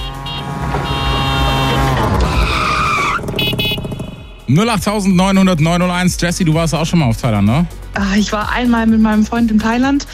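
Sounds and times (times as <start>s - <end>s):
tuk-tuk auto rickshaw engine revving: 0.0s - 4.4s
tuk-tuk auto rickshaw screechy skid: 0.2s - 4.0s
speech: 4.5s - 10.1s.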